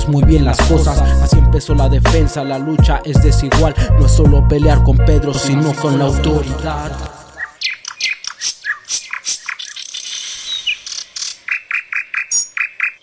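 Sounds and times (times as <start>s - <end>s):
speech: 0.0s - 7.2s
northern mockingbird singing: 5.3s - 13.0s.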